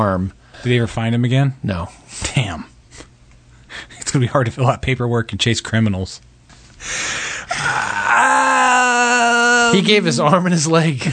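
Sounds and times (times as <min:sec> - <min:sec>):
speech: 0:00.0 - 0:02.7, 0:04.1 - 0:07.1, 0:09.7 - 0:11.1
heavy breathing into the microphone: 0:06.6 - 0:07.7
sustained voiced groan: 0:07.4 - 0:10.1.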